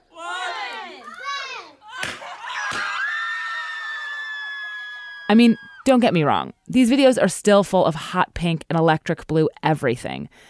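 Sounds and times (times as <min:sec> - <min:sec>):
family members shrieking and squealing with excitement at a gender reveal: 0:00.1 - 0:05.9
sustained high-pitched scream: 0:01.8 - 0:05.9
speech: 0:05.3 - 0:10.4.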